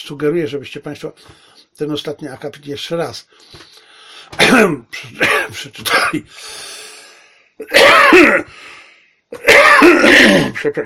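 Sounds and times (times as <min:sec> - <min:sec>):
speech: 0:00.1 - 0:06.9, 0:07.6 - 0:08.7, 0:09.3 - 0:10.8
person with poorly functioning lungs coughing: 0:04.3 - 0:06.3, 0:07.6 - 0:08.5, 0:09.4 - 0:10.6
person with poorly functioning lungs clearing their throat: 0:04.4 - 0:06.3, 0:07.6 - 0:08.5, 0:09.4 - 0:10.6.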